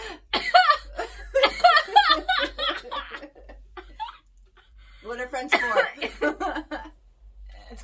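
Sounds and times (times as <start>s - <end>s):
person coughing: 0.0s - 1.9s, 5.5s - 6.2s
laughter: 0.6s - 4.1s, 6.0s - 6.9s.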